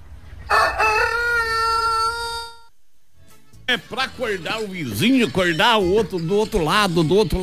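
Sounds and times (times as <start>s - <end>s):
rooster crowing: 0.4s - 2.7s
speech: 3.7s - 7.4s.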